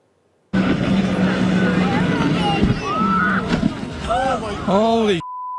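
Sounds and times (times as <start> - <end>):
jet ski engine droning on open water off Stanley Park near Siwash Rock: 0.5 - 5.2
speech: 4.7 - 5.2.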